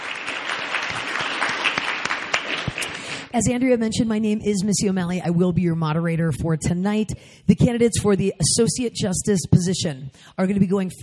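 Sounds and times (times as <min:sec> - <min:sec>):
audience clapping: 0:00.0 - 0:03.3
speech: 0:03.3 - 0:11.0.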